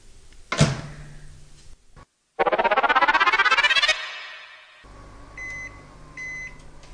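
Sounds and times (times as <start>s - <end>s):
microwave oven high-pitched finish beeps: 2.4s - 4.8s
microwave oven whirring and humming: 4.9s - 6.9s.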